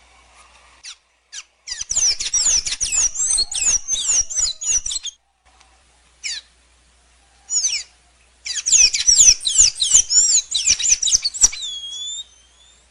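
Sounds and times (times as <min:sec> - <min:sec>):
blue dacnis high chips: 0:00.8 - 0:05.2, 0:08.5 - 0:12.7
blue dacnis song: 0:00.8 - 0:05.3, 0:06.2 - 0:06.5, 0:07.5 - 0:12.9.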